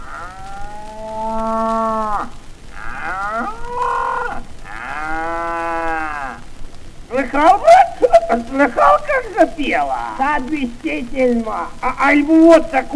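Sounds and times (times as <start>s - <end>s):
cow mooing: 0.0s - 6.4s
speech: 8.3s - 12.9s.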